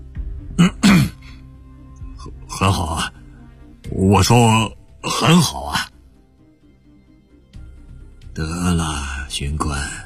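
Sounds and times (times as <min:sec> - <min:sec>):
police inspector giving a short throaty cough: 0:00.6 - 0:01.3
speech: 0:02.6 - 0:03.2, 0:03.9 - 0:05.8, 0:09.4 - 0:10.0.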